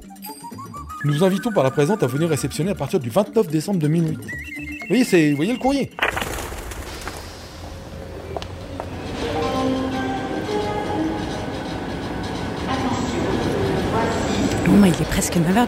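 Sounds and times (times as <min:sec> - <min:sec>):
speech: 0:01.0 - 0:06.2, 0:14.8 - 0:15.6
rail clatter: 0:06.8 - 0:15.6
high-speed TGV train arriving at a railway station: 0:07.1 - 0:15.6.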